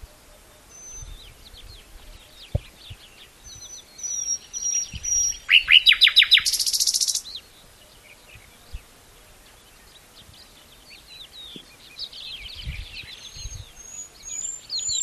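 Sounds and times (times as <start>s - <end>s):
common nightingale Luscinia megarhynchos singing: 0.0s - 8.5s, 9.5s - 15.0s.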